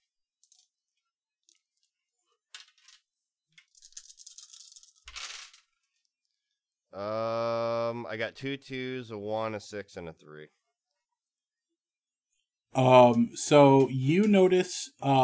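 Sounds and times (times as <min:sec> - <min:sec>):
five dice being rolled: 0:00.3 - 0:01.9, 0:02.5 - 0:05.8
speech: 0:08.1 - 0:10.6, 0:12.8 - 0:15.2.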